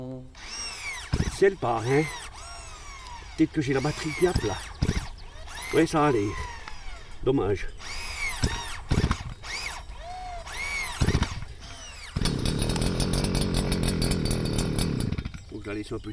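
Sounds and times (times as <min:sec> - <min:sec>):
varied chirping sounds: 0:00.3 - 0:12.2
brush cutter mowing along hedge edges: 0:00.3 - 0:16.0
speech: 0:01.4 - 0:02.2, 0:03.4 - 0:04.7, 0:05.7 - 0:06.5, 0:07.2 - 0:07.9, 0:15.7 - 0:16.1.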